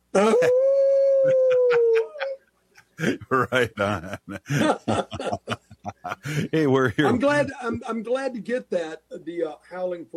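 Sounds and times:
person howling like a wolf: 0:00.2 - 0:02.4
laughter: 0:01.2 - 0:02.4, 0:03.0 - 0:07.8
speech: 0:03.0 - 0:10.1.

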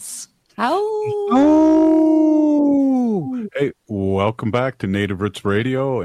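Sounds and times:
speech: 0:00.6 - 0:01.6, 0:03.4 - 0:06.0
wolf howling: 0:01.0 - 0:03.4.

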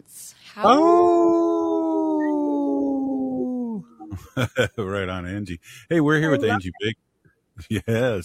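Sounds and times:
speech: 0:00.0 - 0:01.2, 0:04.4 - 0:07.0, 0:07.6 - 0:08.2
person imitating a wolf howl: 0:00.6 - 0:03.9.

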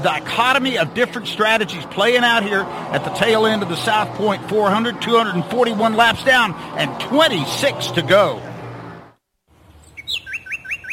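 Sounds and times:
speech: 0:00.0 - 0:08.5
small birds chirping in a garden: 0:09.6 - 0:10.9.

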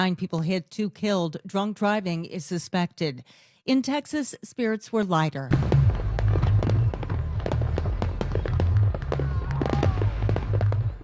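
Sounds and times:
speech: 0:00.0 - 0:05.9
faint crowd noise: 0:05.5 - 0:11.0
fireworks bursting over a city: 0:05.5 - 0:11.0
low rumble: 0:05.5 - 0:11.0.

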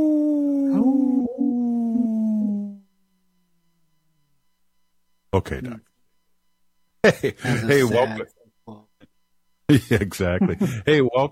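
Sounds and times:
wolf howling: 0:00.0 - 0:02.8
speech: 0:00.7 - 0:01.0, 0:05.4 - 0:05.9, 0:07.0 - 0:08.9, 0:09.7 - 0:11.2
laughter: 0:07.0 - 0:08.2, 0:09.7 - 0:11.2.

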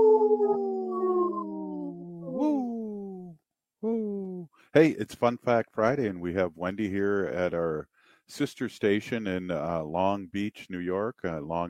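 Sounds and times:
several voices imitating a wolf howl together: 0:00.0 - 0:04.4
speech: 0:04.7 - 0:11.6.

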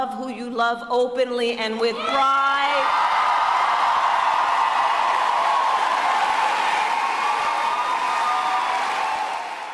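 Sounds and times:
speech: 0:00.0 - 0:03.1
large crowd cheering and roaring at a rally in La Crosse Wisconsin: 0:02.0 - 0:09.7
applause at a rally in La Crosse Wisconsin: 0:02.9 - 0:09.7.

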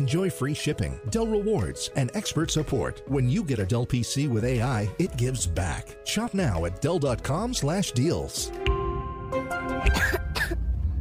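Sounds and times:
speech: 0:00.0 - 0:08.7
child coughing in a children's cold medicine commercial: 0:09.8 - 0:10.6.

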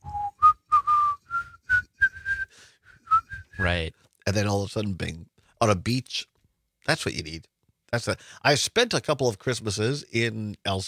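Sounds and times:
person whistling a beer advertisement tune: 0:00.0 - 0:03.7
speech: 0:03.6 - 0:06.3, 0:06.9 - 0:10.8.

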